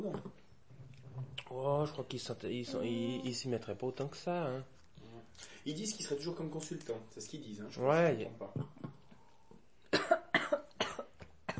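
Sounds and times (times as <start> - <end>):
speech: 0.0 - 0.4, 1.5 - 4.8, 5.4 - 8.8
person coughing: 9.9 - 11.5.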